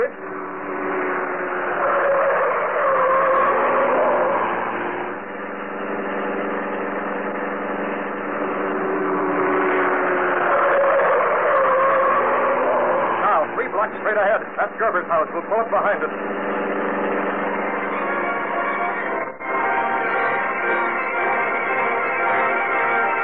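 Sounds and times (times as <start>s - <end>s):
car engine roaring at speed through city streets: 0.0s - 23.2s
speech: 15.0s - 16.5s.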